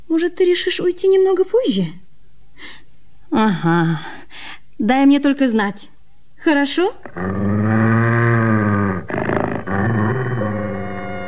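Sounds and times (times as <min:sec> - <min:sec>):
speech: 0:00.1 - 0:02.0, 0:02.6 - 0:08.0
huge dog growling: 0:07.0 - 0:11.2.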